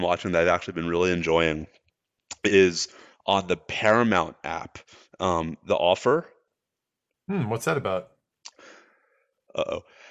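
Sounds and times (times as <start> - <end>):
speech: 0.0 - 1.8, 2.4 - 6.3, 7.3 - 8.1, 9.5 - 10.0
drawn-out breathy inhale before a sneeze: 2.9 - 3.2, 8.5 - 10.0
faint breathing: 2.9 - 3.3, 4.8 - 5.2, 8.5 - 10.0.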